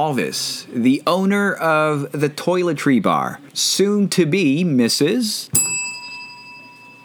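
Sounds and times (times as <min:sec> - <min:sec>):
speech: 0:00.0 - 0:05.7
bell struck: 0:05.6 - 0:07.0.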